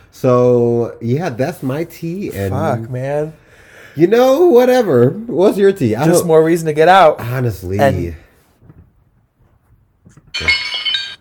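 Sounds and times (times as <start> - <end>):
speech: 0.1 - 3.4, 4.0 - 8.2
glass shattering sound effect: 10.4 - 11.1.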